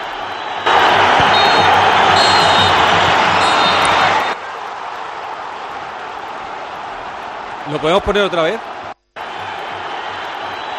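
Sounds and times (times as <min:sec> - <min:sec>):
large football stadium crowd cheering and shouting at a goal: 0:00.0 - 0:10.7
faint high referee whistles: 0:00.2 - 0:04.4
speech: 0:07.8 - 0:08.7.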